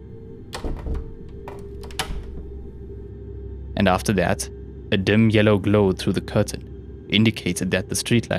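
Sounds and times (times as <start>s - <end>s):
front door knocks and rattles swinging shut: 0.0s - 3.1s
steady low hum: 0.0s - 8.3s
sharp metallic latch click of a front door: 0.2s - 3.0s
speech: 3.8s - 8.3s.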